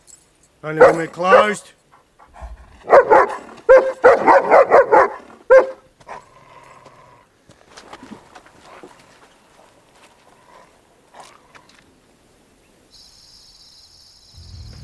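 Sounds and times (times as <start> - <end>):
speech: 0.6 - 1.8
dog barking: 0.8 - 1.6, 2.8 - 6.2.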